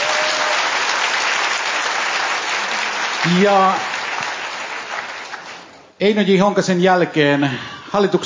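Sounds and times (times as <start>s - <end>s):
audience applauding at a Kansanlähetys event: 0.0s - 5.8s
speech: 3.3s - 3.9s, 6.0s - 8.2s.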